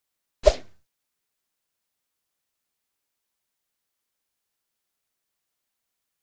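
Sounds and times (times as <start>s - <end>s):
badminton racket whoosh: 0.4s - 0.8s.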